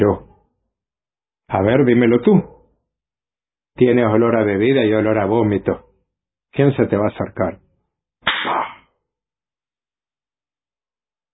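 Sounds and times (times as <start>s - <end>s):
speech: 0.0s - 0.3s, 1.5s - 2.5s, 3.8s - 5.9s, 6.5s - 7.6s
slap across the face: 8.2s - 8.9s.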